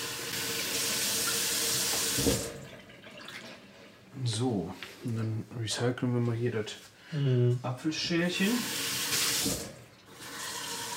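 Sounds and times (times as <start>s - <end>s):
water running from a tap: 0.0s - 3.6s, 8.5s - 10.9s
speech: 2.2s - 2.6s, 4.2s - 8.8s, 9.4s - 9.7s.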